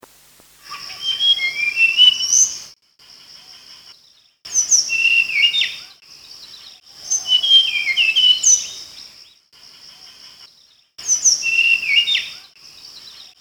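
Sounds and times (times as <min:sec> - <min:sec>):
mangrove blue flycatcher calling: 0:00.6 - 0:02.7, 0:03.4 - 0:09.2, 0:11.0 - 0:13.4.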